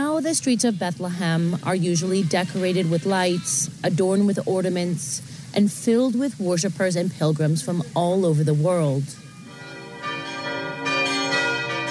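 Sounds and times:
speech: 0:00.2 - 0:09.2
church bell ringing: 0:09.2 - 0:11.8.

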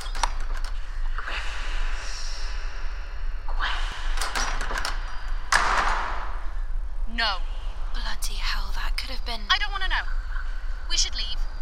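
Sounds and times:
door opening: 0:00.0 - 0:01.0, 0:04.0 - 0:06.7
low steady rumble: 0:00.0 - 0:11.5
speech: 0:07.2 - 0:07.5, 0:08.2 - 0:10.2, 0:10.9 - 0:11.5.

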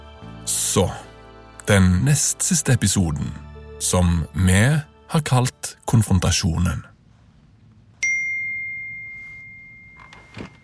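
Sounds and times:
speech: 0:00.7 - 0:01.1, 0:01.7 - 0:06.9
phone text message notification ding: 0:08.0 - 0:10.6.

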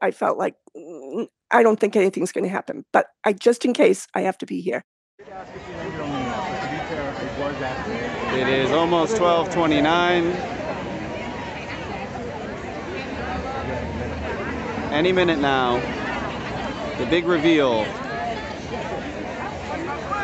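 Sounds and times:
speech: 0:00.0 - 0:05.8, 0:07.4 - 0:10.6, 0:14.9 - 0:16.0, 0:17.0 - 0:18.0
large crowd chattering while waiting: 0:05.2 - 0:20.2.

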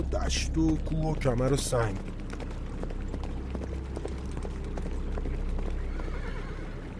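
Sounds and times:
speech: 0:00.0 - 0:02.2
herd of horses hoofbeats: 0:00.0 - 0:06.9
horses whinnying and neighing: 0:04.8 - 0:06.9.

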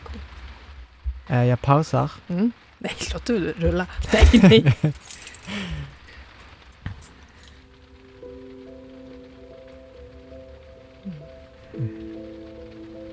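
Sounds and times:
low electrical hum: 0:00.0 - 0:13.1
rain beginning to fall outside: 0:00.0 - 0:13.1
speech: 0:01.3 - 0:05.9
laughter: 0:04.1 - 0:05.0
clinks: 0:04.1 - 0:07.8.

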